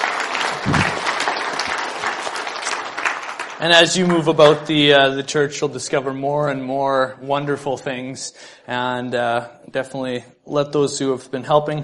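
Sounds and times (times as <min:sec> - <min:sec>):
room full of people applauding: 0:00.0 - 0:04.8
speech: 0:03.6 - 0:11.8.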